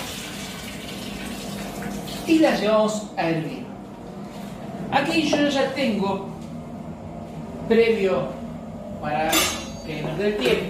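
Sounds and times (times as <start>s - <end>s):
starchy potato rinse water pouring from a bowl into a sink: 0.0s - 2.3s
speech: 2.3s - 3.7s, 4.9s - 6.3s, 7.7s - 8.4s, 9.0s - 10.6s.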